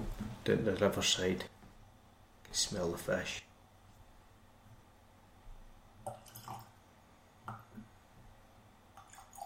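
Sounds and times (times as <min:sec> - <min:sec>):
speech: 0:00.5 - 0:01.6, 0:02.5 - 0:03.5
water trickling into a glass of whiskey: 0:06.1 - 0:06.8, 0:09.0 - 0:09.4.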